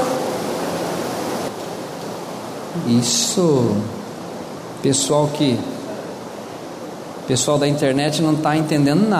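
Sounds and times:
heavy rain pouring down: 0:00.0 - 0:09.1
speech: 0:02.8 - 0:04.0, 0:04.8 - 0:05.8, 0:07.3 - 0:09.1.

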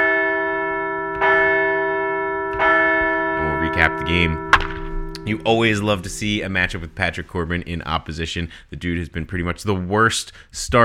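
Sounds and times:
large resonant bell rung to celebrate a team's win: 0:00.0 - 0:07.6
speech: 0:03.9 - 0:04.5, 0:05.2 - 0:10.8.

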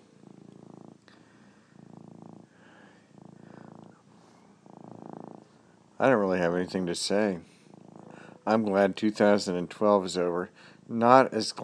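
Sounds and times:
cat purring loudly: 0:00.0 - 0:11.6
speech: 0:06.0 - 0:07.5, 0:08.5 - 0:11.6.

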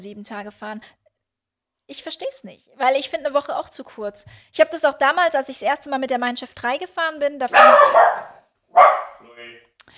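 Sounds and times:
speech: 0:00.0 - 0:01.0, 0:01.9 - 0:09.9
dog barking: 0:07.5 - 0:09.4.

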